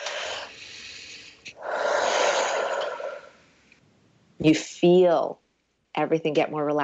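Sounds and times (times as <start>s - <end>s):
deep slow breath drawn in and let out: 0.0s - 3.5s
speech: 4.4s - 5.4s, 6.0s - 6.8s.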